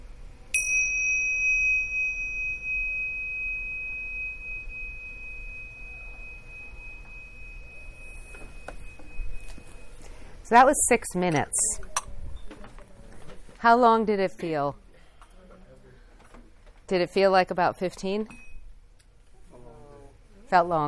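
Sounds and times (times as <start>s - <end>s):
meditation bell struck to end a meditation: 0.6s - 10.4s, 18.3s - 18.7s
speech: 10.5s - 11.9s, 13.6s - 14.8s, 16.9s - 18.4s, 20.5s - 20.8s.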